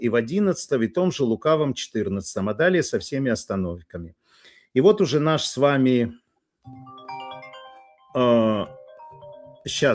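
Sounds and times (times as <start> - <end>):
speech: 0.0 - 6.9, 8.2 - 8.8, 9.6 - 9.9
mobile phone ringtone with short electronic melody: 6.7 - 9.9.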